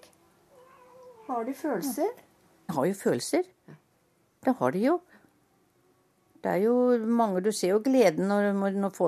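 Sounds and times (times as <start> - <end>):
cat meowing plaintively: 0.5 - 1.5
speech: 1.4 - 3.8, 4.4 - 5.2, 6.4 - 9.0.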